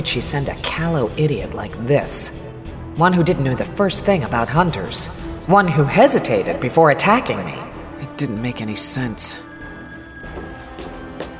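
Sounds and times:
speech: 0.0s - 2.4s, 3.0s - 9.5s
telephone bell ringing in a house: 9.4s - 11.3s.

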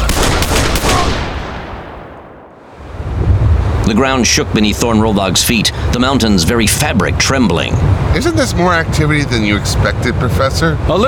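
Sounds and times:
energy rifle firing in a stairwell: 0.1s - 2.7s
speech: 3.9s - 11.0s.

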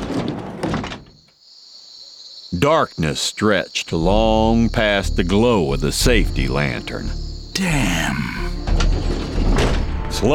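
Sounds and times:
railway caboose door thrown open with heavy thud and scrape: 0.0s - 1.2s, 8.8s - 10.0s
speech: 2.6s - 9.2s, 10.1s - 10.3s.

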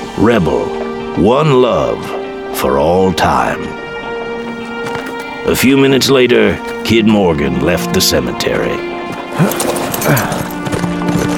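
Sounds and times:
speech: 0.2s - 3.8s, 5.5s - 10.4s
single rider's horse hooves clip-clopping away: 2.0s - 10.8s.

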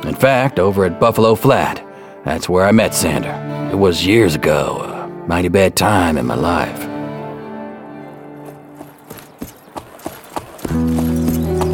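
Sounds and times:
speech: 0.0s - 6.9s
steady tonal music: 0.0s - 11.7s
Appaloosa horse hooves clip-clopping as it is ridden: 8.1s - 11.7s.

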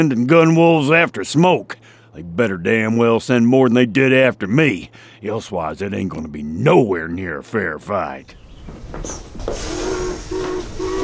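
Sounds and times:
speech: 0.0s - 10.4s
steam train hissing steam: 8.8s - 11.0s
brief high steam train whistle: 9.5s - 11.0s.

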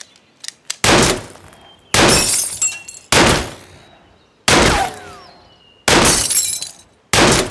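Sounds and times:
pistol shots fired at glass bottles: 0.8s - 3.9s, 4.5s - 7.4s
glass bottles breaking from pistol shots: 2.0s - 3.7s, 5.9s - 7.4s.

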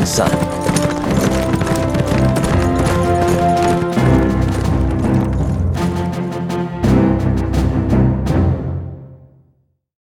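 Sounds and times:
horse hooves clip-clopping as men ride off on horseback: 0.0s - 7.5s
loud continuous musical score: 0.0s - 9.3s
speech: 0.1s - 0.6s.

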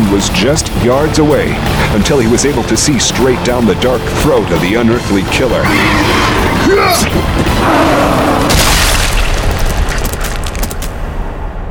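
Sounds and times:
speech: 0.1s - 8.8s
explosion boom: 7.9s - 11.6s
crackling debris: 8.4s - 11.6s.

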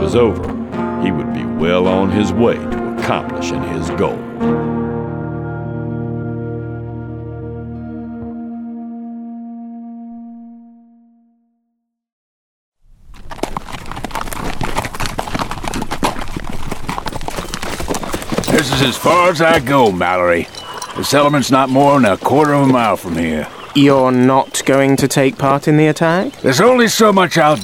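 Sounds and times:
speech: 0.0s - 4.7s, 18.8s - 27.6s
sustained musical chord: 0.8s - 11.6s
horse hooves clip-clopping as a rider rides off toward a settlement: 12.9s - 27.6s.

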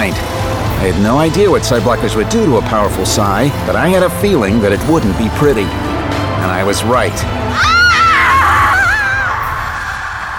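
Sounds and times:
speech: 0.1s - 7.7s
woman screaming: 7.5s - 9.8s.

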